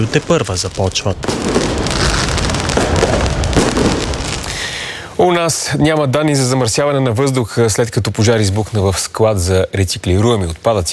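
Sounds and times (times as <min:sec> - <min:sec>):
speech: 0:00.0 - 0:02.8, 0:05.2 - 0:10.9
fireworks crackling and popping: 0:00.0 - 0:06.6.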